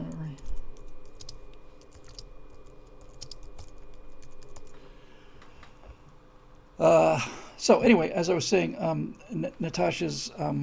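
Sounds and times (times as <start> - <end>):
typing on a computer keyboard: 0.0 - 4.8
low steady hum: 0.0 - 10.6
speech: 6.8 - 10.6.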